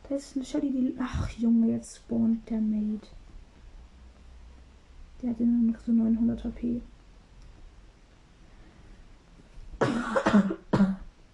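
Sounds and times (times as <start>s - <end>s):
speech: 0.1s - 3.2s, 5.2s - 6.9s
person coughing: 9.8s - 11.1s.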